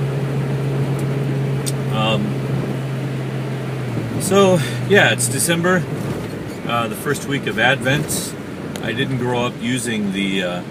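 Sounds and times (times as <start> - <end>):
brief higher-pitched whine: 0.0 - 5.8
low engine hum inside a moving car: 0.0 - 10.7
road rumble: 0.0 - 10.7
speech: 4.3 - 10.7.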